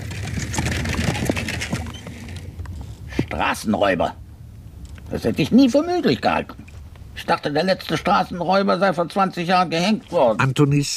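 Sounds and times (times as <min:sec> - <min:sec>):
horse-drawn carriage rattling on a road: 0:00.0 - 0:02.4
horse hooves clip-clopping on a road: 0:00.0 - 0:03.4
speech: 0:03.3 - 0:04.2, 0:05.1 - 0:06.6, 0:07.2 - 0:10.9.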